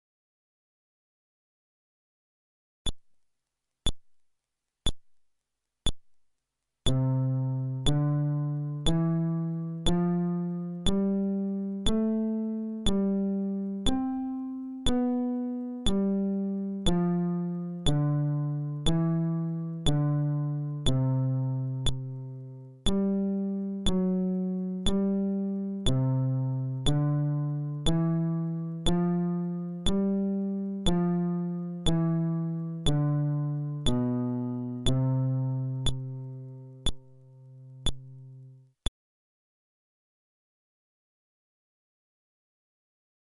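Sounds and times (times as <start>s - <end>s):
scale on a fretless bass: 6.9s - 38.6s.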